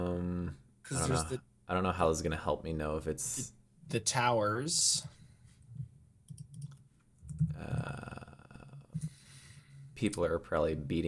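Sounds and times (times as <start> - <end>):
speech: 0.9 - 5.2, 7.6 - 8.2, 10.0 - 11.0
clicks on a computer: 6.2 - 7.6.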